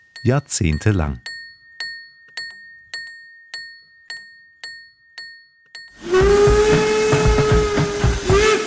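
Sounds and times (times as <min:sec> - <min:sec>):
rope-haulage warning signal metallic bell strikes at rail yard: 0:00.0 - 0:06.2
speech: 0:00.2 - 0:01.3
loud sustained steam whistle blast at rail yard: 0:06.0 - 0:08.6.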